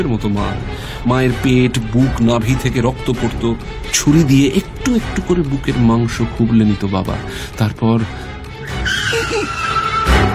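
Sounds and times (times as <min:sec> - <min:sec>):
speech: 0:00.0 - 0:08.4
car tires screeching under hard sudden braking: 0:08.6 - 0:10.3.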